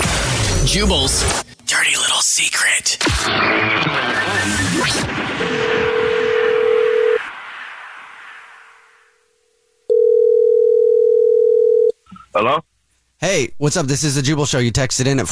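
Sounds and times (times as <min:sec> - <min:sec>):
noisy burst: 0:00.0 - 0:01.7, 0:03.0 - 0:09.4
speech: 0:00.7 - 0:05.8, 0:12.4 - 0:15.3
telephone tones as a caller is rung back: 0:05.8 - 0:07.2, 0:09.9 - 0:12.0.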